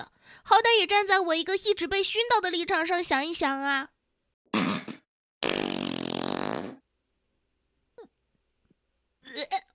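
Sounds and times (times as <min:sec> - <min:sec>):
speech: 0:00.0 - 0:03.9
fart: 0:04.5 - 0:06.8.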